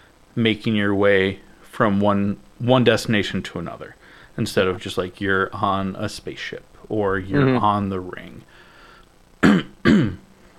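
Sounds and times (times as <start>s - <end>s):
speech: 0.4s - 8.7s
person coughing: 7.3s - 7.7s, 9.4s - 10.2s.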